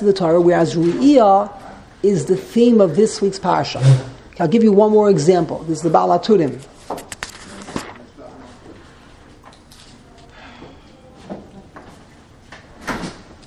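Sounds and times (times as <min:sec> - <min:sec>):
speech: 0:00.0 - 0:07.0
door opening and closing with clunks and rattles: 0:12.6 - 0:13.4.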